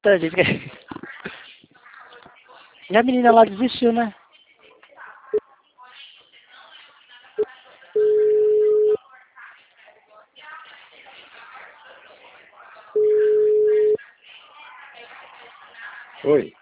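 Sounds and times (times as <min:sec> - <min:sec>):
speech: 0:00.0 - 0:01.0, 0:02.9 - 0:04.2, 0:16.3 - 0:16.6
short telephone beeps: 0:08.0 - 0:09.0, 0:13.0 - 0:14.0
telephone call tones while placing a call: 0:08.0 - 0:09.0, 0:13.0 - 0:14.0.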